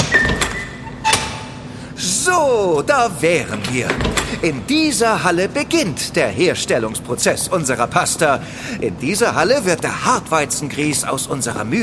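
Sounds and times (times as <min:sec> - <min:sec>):
door opening from an office area into a pasta production hall: 0:00.0 - 0:01.6, 0:03.8 - 0:04.4
speech: 0:02.3 - 0:11.8.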